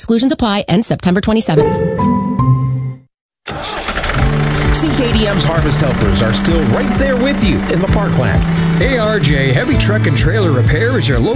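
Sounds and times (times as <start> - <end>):
speech: 0.1 - 2.0, 4.8 - 11.3
leaf blower engine starting: 3.5 - 11.1.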